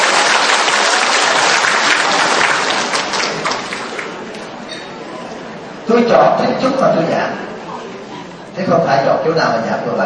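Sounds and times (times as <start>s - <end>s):
audience applause: 0.0s - 4.5s
speech: 5.9s - 7.5s, 8.6s - 10.0s.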